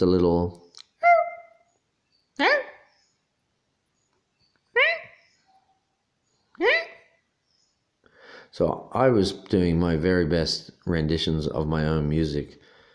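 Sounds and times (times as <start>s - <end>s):
speech: 0.0s - 0.6s, 8.5s - 12.7s
person imitating a small dog's yappy bark: 1.0s - 1.6s, 6.6s - 7.1s.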